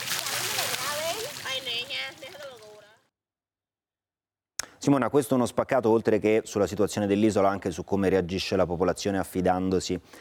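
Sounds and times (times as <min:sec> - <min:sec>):
water sloshing and splashing as people wash outdoors: 0:00.0 - 0:02.9
speech: 0:04.8 - 0:10.1.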